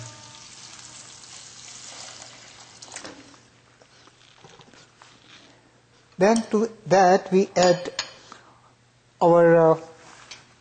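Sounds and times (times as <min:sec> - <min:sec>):
water pouring into a hot pan of vegetables: 0:00.0 - 0:03.2
speech: 0:06.2 - 0:08.0, 0:09.2 - 0:09.9.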